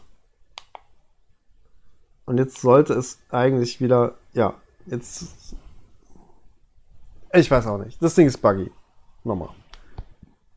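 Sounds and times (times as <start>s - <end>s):
faint hiss: 0.0s - 10.5s
computer mouse clicking in a software menu: 0.5s - 1.0s
speech: 2.3s - 5.6s, 7.3s - 9.6s.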